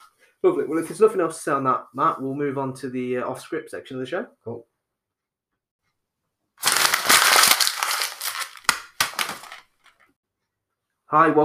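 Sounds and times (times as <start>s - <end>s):
speech: 0.4s - 4.7s, 11.1s - 11.4s
piece of paper being scrunched into a ball: 6.6s - 9.7s.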